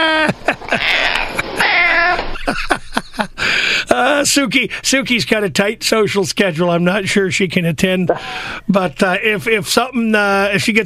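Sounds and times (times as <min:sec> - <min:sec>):
laughter: 0:00.0 - 0:03.4
speech: 0:00.3 - 0:00.9, 0:04.0 - 0:10.8
cat yowling: 0:00.8 - 0:02.3.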